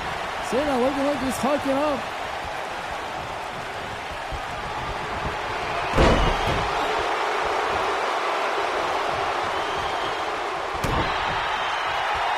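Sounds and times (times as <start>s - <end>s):
crowd roar at a professional wrestling match: 0.0s - 12.3s
speech: 0.5s - 2.2s
belly-to-belly slam onto the mat at a professional wrestling match: 5.9s - 6.7s.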